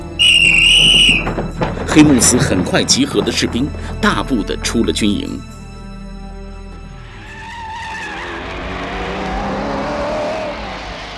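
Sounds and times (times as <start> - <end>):
speech: 1.3 - 5.6
motorcycle with rider and passenger roaring at high speed along a mountain road: 7.8 - 11.1.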